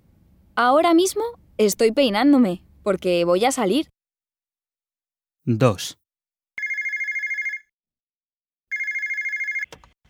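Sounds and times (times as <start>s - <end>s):
speech: 0.6s - 4.0s, 5.5s - 6.0s
telephone bell ringing: 6.6s - 7.7s, 8.7s - 9.7s.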